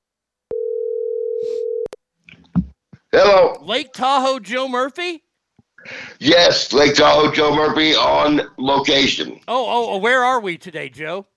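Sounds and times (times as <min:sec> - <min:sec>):
telephone ringback tone on an outgoing call: 0:00.5 - 0:01.9
speech: 0:03.2 - 0:05.2, 0:05.8 - 0:11.3.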